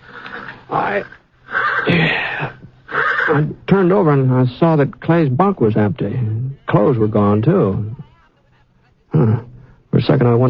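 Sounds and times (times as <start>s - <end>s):
agitated horse neighing: 0.0s - 3.6s, 9.1s - 9.6s
speech: 0.7s - 1.2s, 3.3s - 8.0s, 9.1s - 10.4s.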